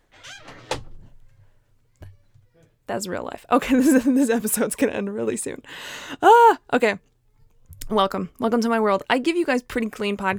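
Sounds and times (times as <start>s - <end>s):
door opened with a clunk to free stuck pants: 0.0s - 2.5s
speech: 2.9s - 7.1s, 7.9s - 10.3s
laughter: 3.6s - 4.7s.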